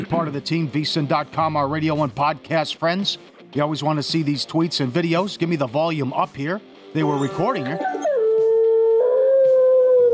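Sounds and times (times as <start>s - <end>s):
speech: 0.0s - 8.0s
beagle howling while left alone: 7.2s - 10.1s.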